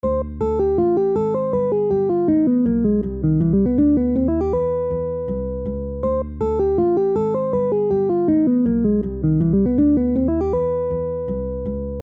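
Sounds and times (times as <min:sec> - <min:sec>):
major two five one chord progression: 0:00.0 - 0:12.0.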